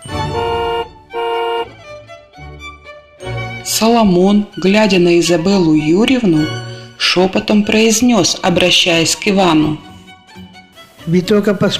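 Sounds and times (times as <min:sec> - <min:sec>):
car horn honking: 0:00.0 - 0:01.9
speech: 0:03.7 - 0:09.9, 0:11.1 - 0:11.7.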